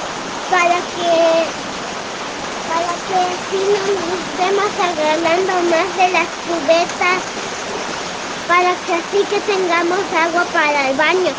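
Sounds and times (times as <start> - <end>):
steady rain falling while rainwater is collected: 0.0 - 11.3
speech: 0.5 - 1.7, 2.8 - 7.4, 8.5 - 11.3.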